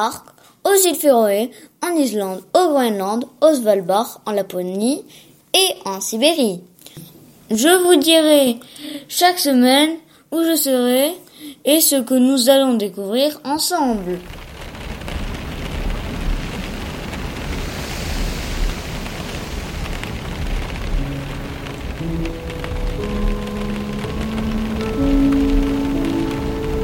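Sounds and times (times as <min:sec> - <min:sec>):
speech: 0:00.0 - 0:14.4
storm wind heard from inside a house: 0:13.8 - 0:26.8.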